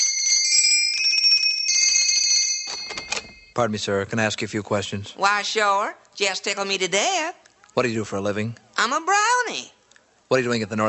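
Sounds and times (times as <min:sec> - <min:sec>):
doorbell ringing with a bright high metallic ring: 0:00.0 - 0:03.6
speech: 0:03.6 - 0:10.8.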